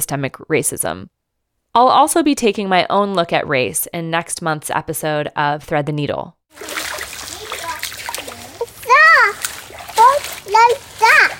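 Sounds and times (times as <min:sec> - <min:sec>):
speech: 0:00.0 - 0:01.2, 0:01.8 - 0:07.0, 0:10.5 - 0:11.3
water splashing and sloshing around wading children: 0:06.5 - 0:11.3
children chattering and squealing while wading in a creek: 0:06.6 - 0:11.3.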